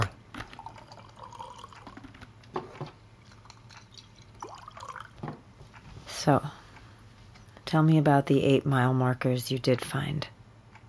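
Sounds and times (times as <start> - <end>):
low steady hum: 0.0 - 10.8
Jura whiskey poured into a glass: 0.6 - 2.0, 3.2 - 5.2
speech: 6.2 - 6.6, 7.7 - 10.4.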